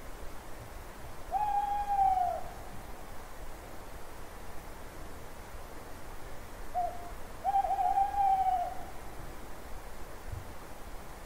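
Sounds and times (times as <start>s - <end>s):
soft background hiss: 0.0s - 11.2s
owl hooting at night: 1.3s - 2.6s, 6.7s - 9.0s.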